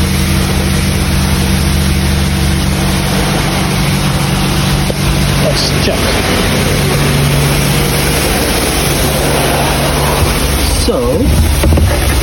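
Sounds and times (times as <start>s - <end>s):
car engine idling: 0.0s - 12.2s
man speaking: 5.3s - 6.4s.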